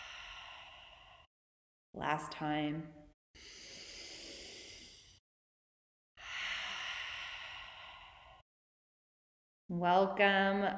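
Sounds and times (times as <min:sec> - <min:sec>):
deep breathing in and out during a guided full moon circle: 0:00.0 - 0:01.3, 0:03.4 - 0:05.2, 0:06.2 - 0:08.5
speech: 0:02.0 - 0:03.5, 0:09.7 - 0:10.7.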